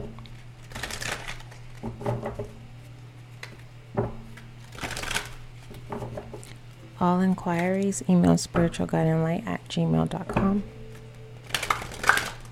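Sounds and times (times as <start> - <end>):
faint hum: 0.0 - 12.5
deck of tarot cards being shuffled for a reading: 0.2 - 1.9, 2.8 - 3.7, 4.3 - 6.6, 10.9 - 12.5
speech: 7.0 - 10.8.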